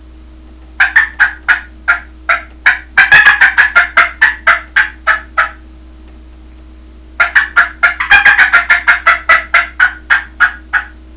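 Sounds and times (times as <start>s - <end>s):
turkey cackling: 0.8s - 5.6s, 7.2s - 11.0s.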